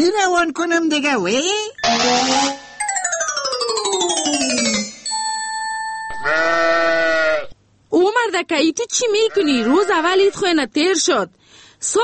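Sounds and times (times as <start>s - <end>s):
speech: 0.0s - 2.7s, 8.4s - 12.0s
short steady ringing tone: 2.5s - 7.0s
sheep bleating: 6.2s - 7.6s, 9.3s - 10.4s.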